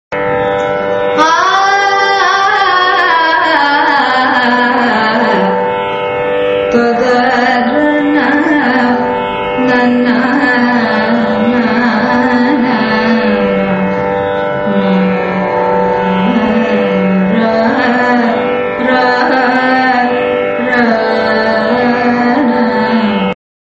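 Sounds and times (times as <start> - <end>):
carnatic music: 0.1 - 23.4.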